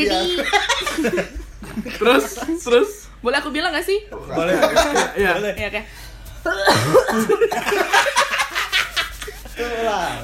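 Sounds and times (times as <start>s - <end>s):
speech: 0.0s - 1.4s, 2.0s - 8.4s, 9.6s - 10.2s
laughter: 0.0s - 2.6s, 4.4s - 5.5s, 6.5s - 10.2s
person coughing: 6.4s - 7.8s.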